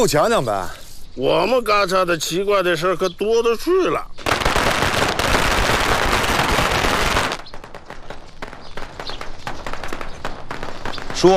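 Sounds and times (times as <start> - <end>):
speech: 0.0 - 4.3
string of firecrackers exploding in the early morning: 4.2 - 11.3.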